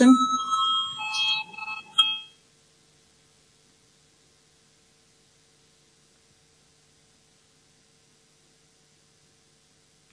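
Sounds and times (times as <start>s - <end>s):
electronic voting bell ringing in a parliament chamber: 0.0s - 2.3s.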